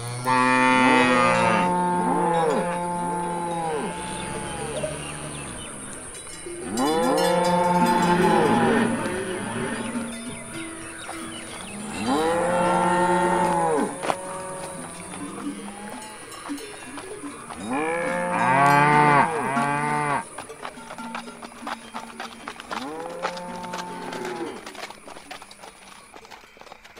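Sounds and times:
herd of cattle lowing and mooing restlessly: 0:00.0 - 0:05.8, 0:06.6 - 0:10.6, 0:11.4 - 0:16.3, 0:17.6 - 0:20.3, 0:22.7 - 0:24.7.

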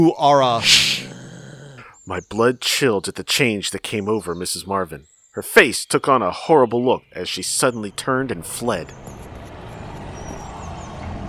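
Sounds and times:
speech: 0:00.0 - 0:01.1, 0:02.1 - 0:09.3
heavy truck engine rumbling: 0:07.7 - 0:11.2.

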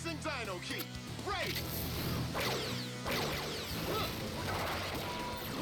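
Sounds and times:
speech: 0:00.1 - 0:02.8
punches sounding like laser zaps: 0:01.5 - 0:05.5.

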